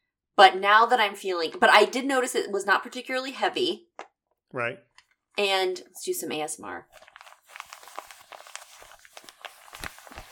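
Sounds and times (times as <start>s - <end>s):
speech: 0.4s - 3.9s, 4.5s - 7.1s
paper crinkling and rustling inside a bag as it is handled: 6.9s - 10.3s.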